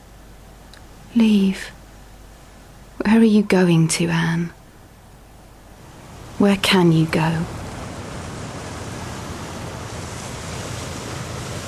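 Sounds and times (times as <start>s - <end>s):
speech: 1.1s - 1.8s, 3.0s - 4.6s, 6.4s - 7.6s
ocean surf crashing against rocks: 5.8s - 11.6s.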